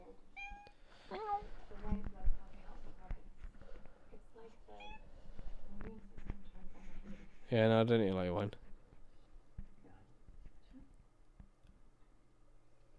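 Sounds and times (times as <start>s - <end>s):
cat meowing: 0.3s - 0.8s, 4.8s - 5.0s
soft clatter: 0.6s - 7.8s, 8.4s - 12.2s
speech: 7.5s - 8.6s.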